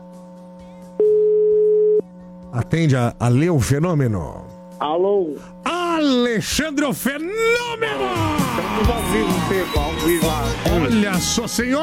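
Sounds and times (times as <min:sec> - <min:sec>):
low hum: 0:00.0 - 0:08.3
ringback tone on an outgoing telephone call: 0:01.0 - 0:02.6
speech: 0:02.6 - 0:11.8.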